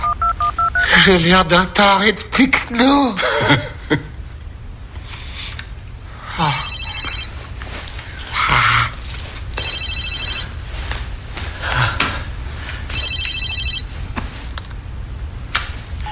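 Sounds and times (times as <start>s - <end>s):
mobile phone ringing: 0.0s - 1.0s, 6.5s - 7.4s, 9.6s - 10.6s, 12.9s - 13.9s
low hum: 0.0s - 16.1s
speech: 1.0s - 4.1s.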